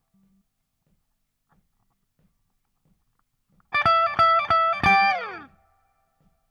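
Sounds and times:
backing guitar solo: 3.7s - 5.6s.

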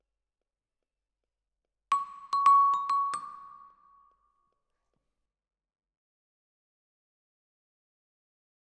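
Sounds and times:
vibraphone: 1.9s - 3.9s.

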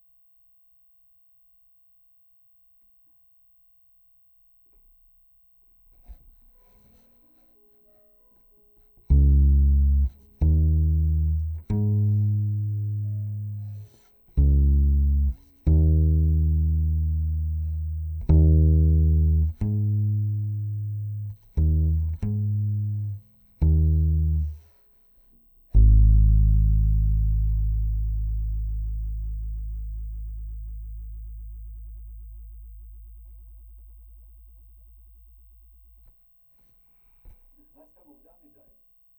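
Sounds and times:
bass guitar direct input: 9.0s - 24.9s, 25.7s - 36.1s.

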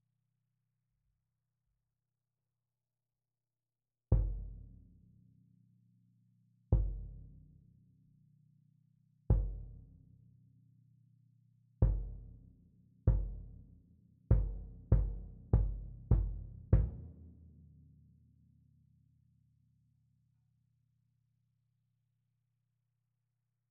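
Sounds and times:
rear bass drum: 6.8s - 7.4s, 9.3s - 9.9s, 11.8s - 12.4s, 13.1s - 13.7s, 14.3s - 17.1s.

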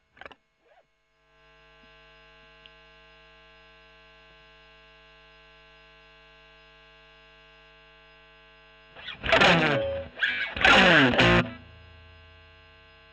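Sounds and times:
E.GTR Gefell OD electric guitar: 9.0s - 12.9s.

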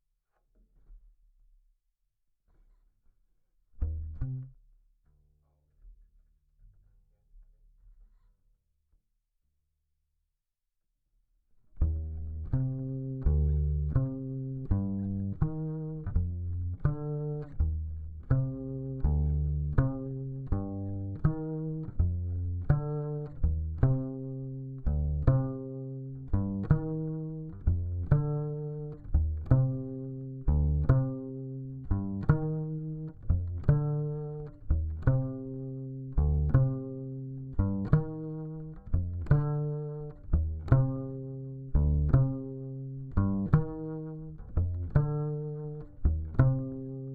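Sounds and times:
bass guitar recorded by direct input: 3.8s - 5.5s, 11.7s - 47.1s.

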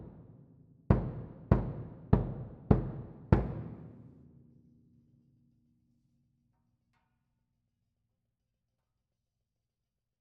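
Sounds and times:
close bass drum: 0.9s - 4.0s.

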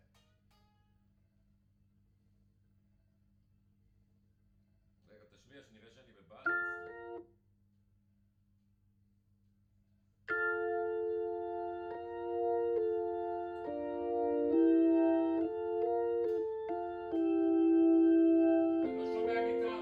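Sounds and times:
Hammond organ through Leslie rotating speaker: 6.5s - 7.2s, 10.3s - 19.8s.

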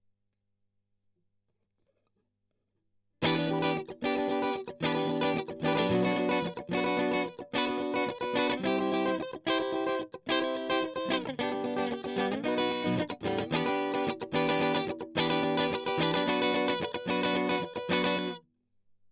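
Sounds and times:
strum: 3.2s - 18.4s.

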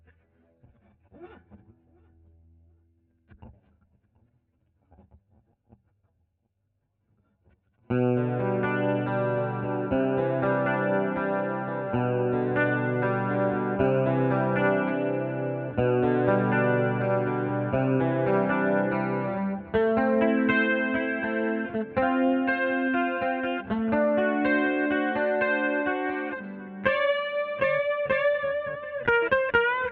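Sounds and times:
guitar solo: 7.9s - 29.9s.

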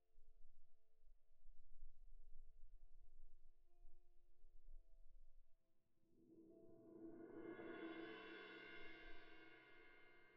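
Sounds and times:
cymbal: 6.9s - 10.3s.

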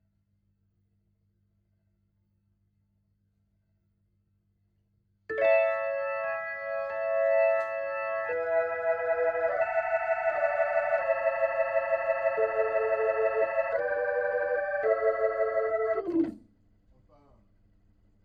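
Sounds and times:
Hammond organ through Leslie rotating speaker: 5.3s - 16.4s.

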